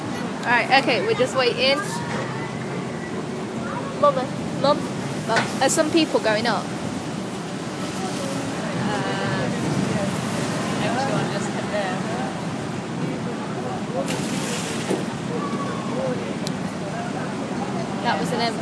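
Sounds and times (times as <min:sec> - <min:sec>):
crowd chattering faintly: 0:00.0 - 0:18.6
water ride boat splashing through water at the bottom of a water slide: 0:00.0 - 0:18.6
speech: 0:00.4 - 0:02.2, 0:04.0 - 0:06.8, 0:18.0 - 0:18.6.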